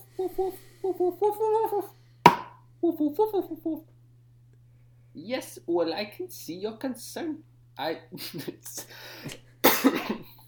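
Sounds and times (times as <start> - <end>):
speech: 0.3 - 1.9, 3.0 - 3.9, 5.1 - 10.2
person coughing with a rough breathy hack: 9.3 - 10.4.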